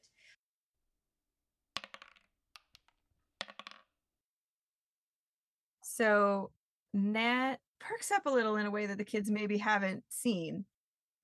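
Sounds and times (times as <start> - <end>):
dice clattering on a hard surface: 1.8 - 4.0
speech: 6.0 - 10.7.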